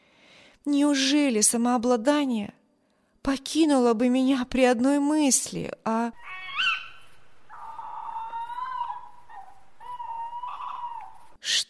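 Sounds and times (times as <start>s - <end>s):
speech: 0.6s - 2.6s, 3.2s - 6.4s
owl hooting outside a window: 6.2s - 11.6s.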